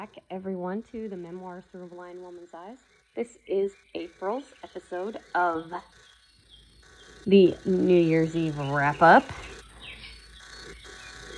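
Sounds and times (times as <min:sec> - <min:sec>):
speech: 0:00.0 - 0:06.1, 0:07.2 - 0:09.6
soft birdsong in sleep sounds ambience: 0:00.0 - 0:11.3
steady low hum: 0:00.0 - 0:11.3.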